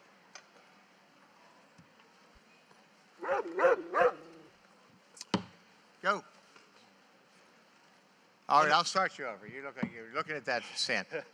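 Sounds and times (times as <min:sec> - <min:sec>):
dog barking: 0:03.2 - 0:04.3
speech: 0:08.5 - 0:11.3.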